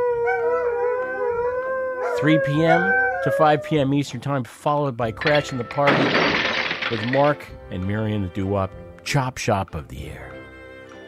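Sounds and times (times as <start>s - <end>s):
hound dog howling: 0.0s - 4.1s
speech: 2.2s - 10.3s.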